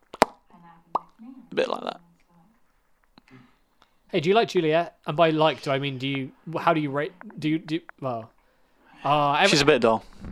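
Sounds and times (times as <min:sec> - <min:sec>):
mouth-made wet pops imitating an appendix rupturing: 0:00.0 - 0:01.2
speech: 0:04.1 - 0:08.4, 0:09.0 - 0:10.3.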